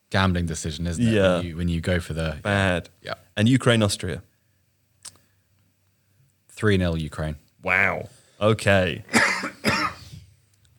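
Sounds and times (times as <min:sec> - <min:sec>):
speech: 0:00.1 - 0:04.3, 0:06.6 - 0:09.6
harsh coughs: 0:09.1 - 0:10.2.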